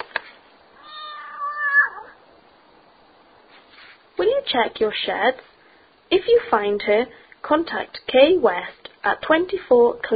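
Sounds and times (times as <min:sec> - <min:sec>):
plump black cat meowing: 0:00.8 - 0:02.2
speech: 0:04.5 - 0:05.5, 0:06.1 - 0:10.1.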